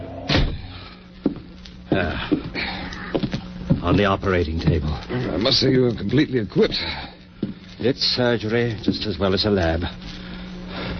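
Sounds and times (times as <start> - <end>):
low room hum: 0.0 - 10.9
door kicked shut: 0.2 - 0.7
speech: 1.9 - 3.2, 3.8 - 7.1, 7.8 - 10.2.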